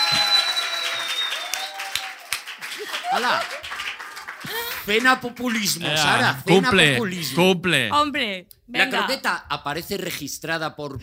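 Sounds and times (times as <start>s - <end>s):
crowd applause: 0.0s - 6.9s
speech: 3.2s - 3.6s, 4.4s - 11.0s.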